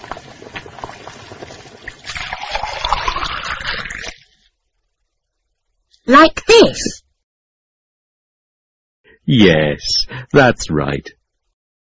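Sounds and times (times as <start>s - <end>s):
boiling water poured into a container of instant noodles: 0.0s - 4.5s
speech: 6.1s - 7.0s, 9.3s - 11.2s.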